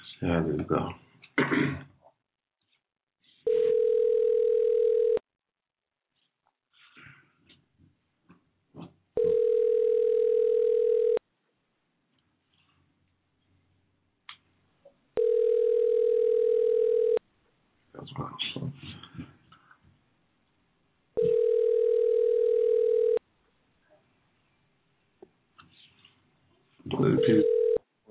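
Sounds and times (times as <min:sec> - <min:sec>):
speech: 0:00.2 - 0:01.9
long steady buzzing telephone ring tones on a phone line: 0:03.5 - 0:05.2, 0:09.2 - 0:11.2, 0:15.2 - 0:17.2, 0:21.2 - 0:23.2, 0:27.1 - 0:27.8.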